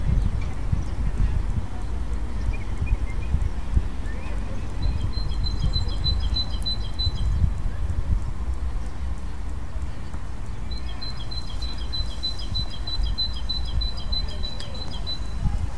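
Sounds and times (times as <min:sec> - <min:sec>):
low background noise: 0:00.0 - 0:15.7
bird singing during the solar eclipse of 20 March 2015: 0:01.8 - 0:07.6, 0:10.6 - 0:15.7.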